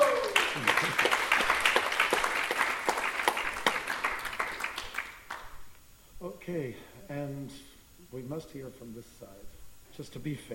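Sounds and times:
audience applause at a performing-arts event: 0.0s - 5.6s
speech: 6.5s - 10.5s.

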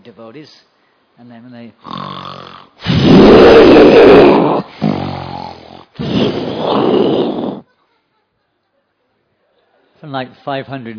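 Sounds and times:
speech: 0.0s - 4.7s, 10.0s - 10.9s
voice imitating loud rough snoring: 1.8s - 7.6s.

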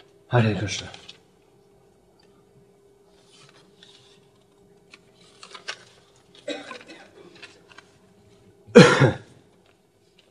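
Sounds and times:
speech: 0.3s - 1.0s
loud harsh cough: 6.4s - 7.4s, 8.7s - 9.4s
person softly clearing their throat: 6.4s - 7.4s, 8.7s - 9.4s.

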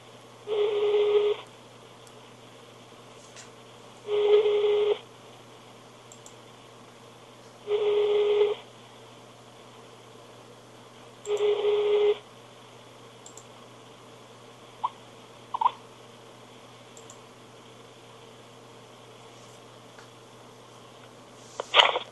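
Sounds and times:
outgoing Skype call ringback tone: 0.5s - 1.4s, 4.1s - 5.0s, 7.7s - 8.6s, 11.3s - 12.2s
faint clicks and a sharp click: 6.1s - 6.4s, 13.2s - 13.5s, 17.0s - 17.2s.

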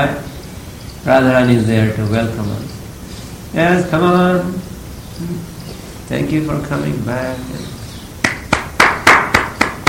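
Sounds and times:
speech: 0.0s - 0.4s, 1.0s - 2.8s, 3.5s - 5.5s, 6.1s - 7.8s
sharp hand clapping in a steady rhythm: 8.2s - 9.8s.

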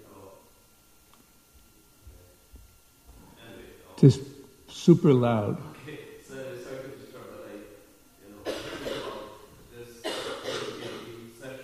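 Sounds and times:
speech: 4.0s - 5.8s
woman coughing: 8.4s - 9.3s, 10.0s - 11.2s.

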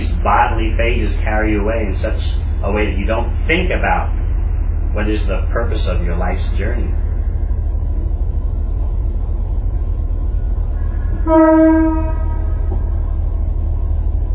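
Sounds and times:
train rumbling: 0.0s - 14.3s
speech: 0.2s - 4.2s, 4.9s - 7.1s, 11.3s - 12.2s
train horn blast: 10.8s - 13.2s.

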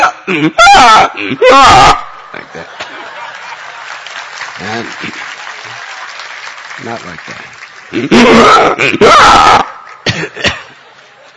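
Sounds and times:
voice imitating a demon's scream in harsh strained bursts: 0.0s - 2.1s, 8.1s - 9.8s
speech: 0.3s - 2.8s, 4.6s - 5.2s, 6.8s - 10.6s
laughter: 2.2s - 6.0s, 7.8s - 8.8s.

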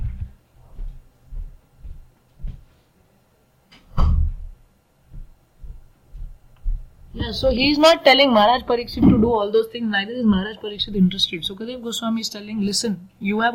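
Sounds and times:
soft bumps and knocks of a door: 0.0s - 2.7s, 4.0s - 7.9s, 8.9s - 9.4s
door pushed shut with a heavy dull thud: 3.9s - 4.5s
speech: 7.2s - 13.5s.

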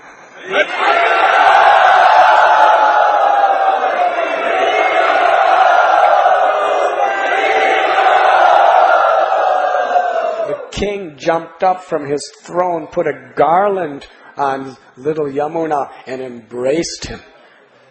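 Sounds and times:
speech: 0.4s - 1.1s, 10.8s - 17.3s
large crowd roaring and cheering: 0.4s - 10.8s.

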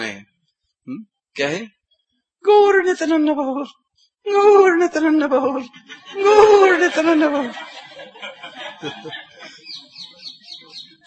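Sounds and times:
speech: 0.8s - 1.8s, 2.4s - 9.2s
laughter: 5.3s - 10.3s
parrot chirpy calls: 9.3s - 11.0s.

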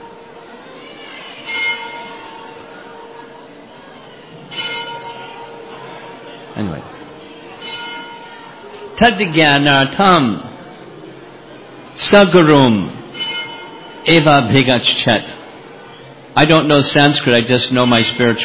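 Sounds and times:
bell rung by a man pulling a rope: 1.4s - 2.4s, 4.5s - 5.8s, 7.6s - 8.6s, 13.1s - 14.2s, 17.7s - 18.4s
speech: 6.6s - 7.0s, 9.0s - 10.5s, 12.0s - 13.0s, 14.0s - 15.4s, 16.4s - 18.4s.

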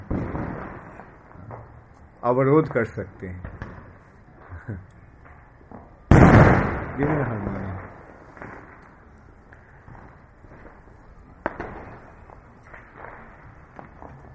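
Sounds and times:
firecracker bursting outside: 0.0s - 1.8s, 3.3s - 4.2s, 6.1s - 14.3s
speech: 2.2s - 3.5s, 4.7s - 4.9s, 7.0s - 7.6s.

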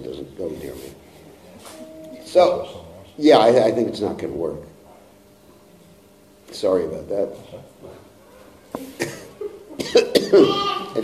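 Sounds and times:
speech: 0.0s - 4.7s, 6.5s - 8.0s, 8.8s - 9.2s, 9.9s - 11.0s
person coughing in harsh bursts: 9.0s - 10.7s.

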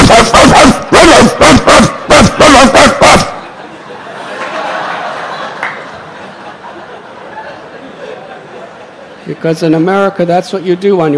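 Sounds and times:
person imitating a vicious guard dog barking: 0.0s - 3.4s
laughter: 0.0s - 9.4s
speech: 9.4s - 11.1s.

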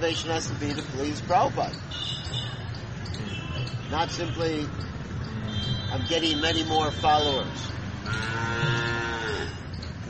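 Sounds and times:
speech: 0.0s - 2.4s, 3.1s - 4.9s, 5.5s - 8.8s
cow mooing: 8.1s - 9.6s.

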